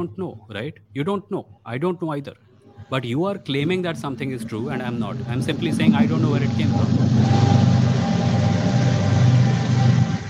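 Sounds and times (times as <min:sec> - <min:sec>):
speech: 0:00.0 - 0:07.6
thin metallic whine: 0:02.6 - 0:10.2
passing train rumbling: 0:02.7 - 0:10.2.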